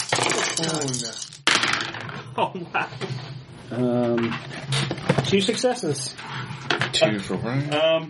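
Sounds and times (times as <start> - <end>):
dice clattering and tumbling across a hard tabletop: 0.0 - 2.1
speech: 0.6 - 1.5, 2.4 - 8.0.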